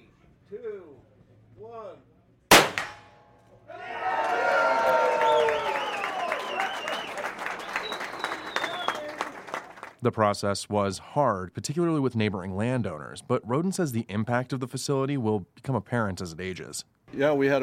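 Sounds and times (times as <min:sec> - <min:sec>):
gunshot from a Smith & Wesson .357 Magnum rifle at a shooting range: 0:02.5 - 0:03.2
crowd applauding and cheering at a shooting range opening ceremony: 0:03.8 - 0:10.0
speech: 0:10.0 - 0:17.6.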